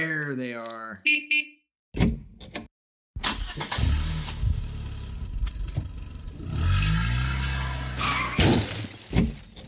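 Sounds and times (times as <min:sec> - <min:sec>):
speech: 0:00.0 - 0:02.1
car engine cranking, revving and accelerating: 0:03.4 - 0:08.4
car crash impact hitting an old woman: 0:07.7 - 0:09.6.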